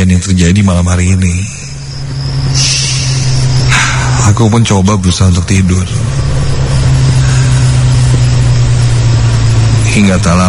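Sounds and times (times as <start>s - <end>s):
noisy vehicle engine droning in the distance: 0.0s - 10.4s
speech: 0.2s - 1.6s, 4.3s - 6.2s, 10.0s - 10.4s.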